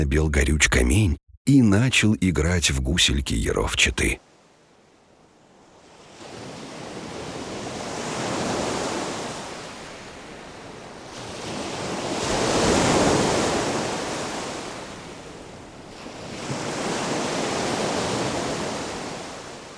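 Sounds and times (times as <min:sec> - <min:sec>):
speech: 0:00.0 - 0:04.3
lake waves surging and receding: 0:05.8 - 0:19.7.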